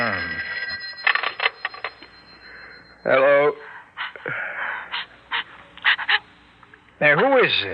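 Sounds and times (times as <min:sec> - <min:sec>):
telephone bell ringing: 0:00.0 - 0:03.6
speech: 0:03.0 - 0:03.3, 0:07.1 - 0:07.7.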